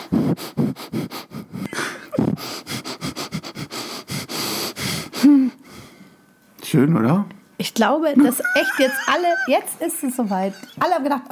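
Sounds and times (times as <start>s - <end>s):
person sniffing in through the nose: 0.0s - 6.2s
speech: 6.8s - 11.2s
laughter: 8.2s - 10.8s.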